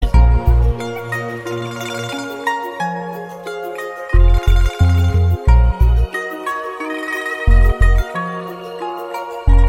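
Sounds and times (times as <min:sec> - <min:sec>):
Chinese guitar playing: 0:00.1 - 0:08.8.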